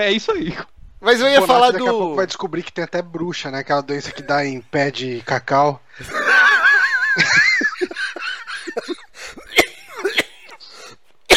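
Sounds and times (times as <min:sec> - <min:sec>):
speech: 0:00.0 - 0:06.4
laughter: 0:06.0 - 0:10.1
person coughing after choking: 0:08.7 - 0:11.3
wheezy strained gasps: 0:09.1 - 0:09.5, 0:10.6 - 0:11.1.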